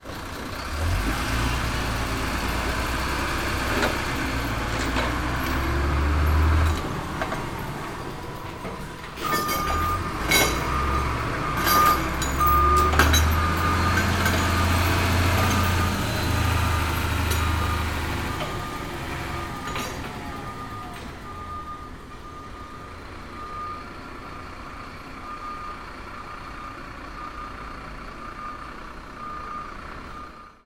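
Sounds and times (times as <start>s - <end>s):
transport truck reversing: 0.0s - 30.6s
loose chains banging and rattling: 9.2s - 10.8s, 11.6s - 14.7s.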